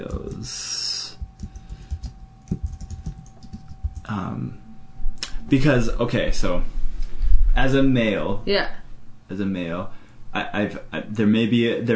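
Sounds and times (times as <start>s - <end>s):
steady faint hum: 0.0s - 11.9s
speech: 0.1s - 0.7s, 4.1s - 4.6s, 5.5s - 6.8s, 7.6s - 11.9s
typing on a computer keyboard: 1.2s - 4.1s.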